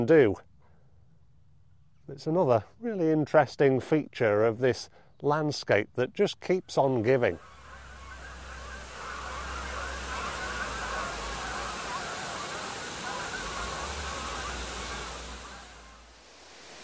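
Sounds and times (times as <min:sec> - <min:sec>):
speech: 0:00.0 - 0:00.5, 0:02.1 - 0:07.5
large flock of geese honking while taking flight: 0:07.0 - 0:16.2
low wind-like rumble: 0:07.3 - 0:16.8.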